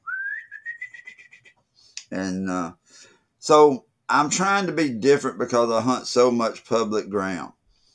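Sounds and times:
hawk call device blown by a turkey hunter, rising whistle and chirpy peeps: 0.0s - 1.6s
speech: 2.1s - 7.6s.

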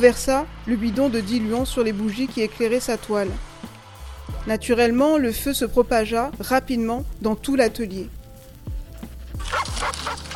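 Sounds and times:
speech: 0.0s - 3.5s, 4.4s - 8.2s
dog barking: 9.4s - 10.3s.

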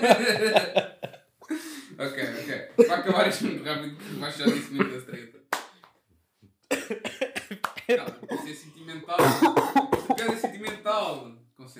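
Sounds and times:
speech: 0.0s - 0.9s, 2.8s - 5.3s
laughter: 0.0s - 5.3s, 6.8s - 10.8s
person coughing: 3.3s - 5.0s, 6.7s - 10.8s.

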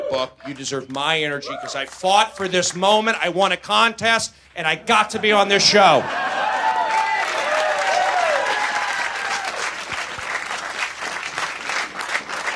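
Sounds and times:
people whooping and cheering: 0.0s - 0.6s, 1.4s - 2.5s, 5.9s - 10.2s
live show audience applause: 0.0s - 2.8s, 5.8s - 12.5s
speech: 0.1s - 6.3s.

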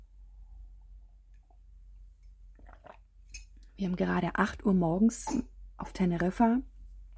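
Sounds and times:
low steady hum: 0.0s - 7.1s
sipping and slurping from a cup in Tenerife: 2.5s - 3.7s
speech: 3.8s - 6.7s.

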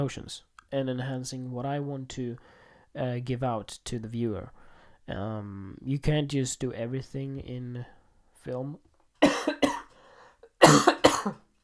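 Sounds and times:
speech: 0.0s - 9.3s, 10.7s - 11.4s
person coughing harsh raspy bursts: 9.2s - 10.0s, 10.6s - 11.4s.

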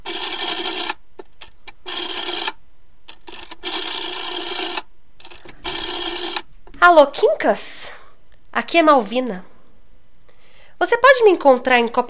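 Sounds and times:
telephone dial whirring: 0.0s - 6.8s
speech: 6.8s - 7.7s, 8.6s - 9.5s, 11.0s - 12.0s.

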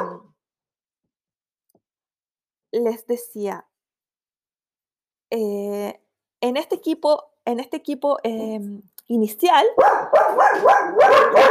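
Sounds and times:
dogs barking loudly at night as neighbours pass: 0.0s - 0.3s, 9.7s - 11.4s
speech: 2.7s - 3.7s, 5.3s - 11.4s.

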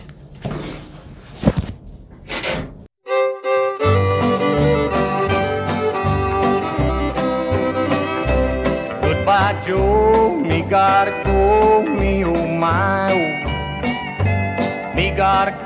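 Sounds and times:
door creaking open: 2.2s - 2.8s
bright band with steady rhythm playing: 3.1s - 15.6s.

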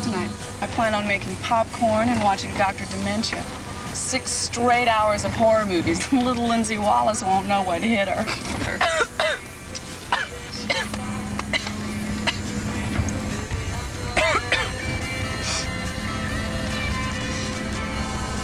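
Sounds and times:
steady low hum: 0.0s - 18.4s
speech: 0.6s - 9.4s
person coughing harshly and clearing throat: 8.3s - 9.5s, 10.1s - 12.5s, 14.2s - 14.8s.

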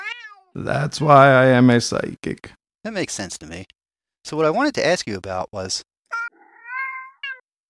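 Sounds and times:
pet cat meowing while eating sandalwood: 0.0s - 0.5s, 6.1s - 7.5s
speech: 0.6s - 5.9s.

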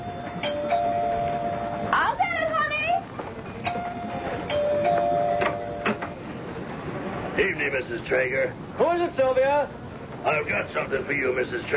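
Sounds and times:
doorbell ringing: 0.0s - 2.0s, 3.7s - 6.0s
constant hiss of noise: 0.0s - 11.7s
speech: 7.8s - 11.7s.

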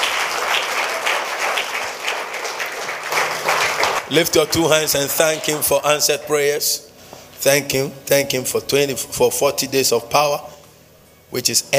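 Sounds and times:
crowd applauding as a clap offering to the Lord: 0.0s - 5.2s
speech: 4.1s - 10.5s, 11.3s - 11.7s.

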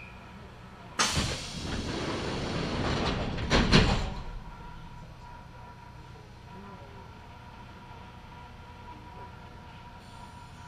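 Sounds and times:
stopping train rumbling as it pulls away: 0.0s - 10.6s
loud clunk: 1.0s - 4.5s
local train doors sliding shut: 1.0s - 4.6s.

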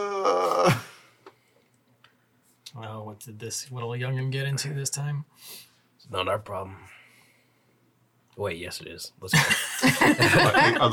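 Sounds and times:
human voice performing a groan in a spooky tabletop game: 0.0s - 1.1s
speech: 3.2s - 7.0s, 8.4s - 10.9s
laughter: 9.4s - 10.9s.

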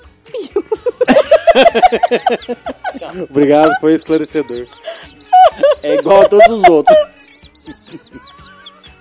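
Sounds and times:
laughter: 0.3s - 8.6s
speech: 1.6s - 8.3s
voice imitating frightened bird chirps: 2.3s - 8.9s.

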